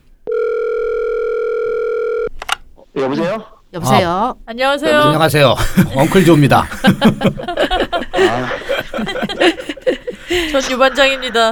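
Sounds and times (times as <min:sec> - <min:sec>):
telephone dial tone while placing a call: 0:00.2 - 0:02.6
speech: 0:03.0 - 0:09.7, 0:10.3 - 0:11.5
laughter: 0:03.3 - 0:11.5.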